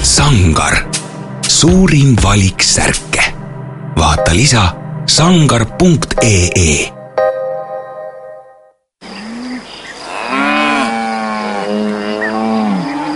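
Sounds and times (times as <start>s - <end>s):
speech: 0.1s - 1.0s, 1.6s - 3.3s, 4.0s - 7.0s
brief musical tone: 3.5s - 8.8s
insects chirping: 9.0s - 13.1s
several cows mooing: 9.1s - 13.1s.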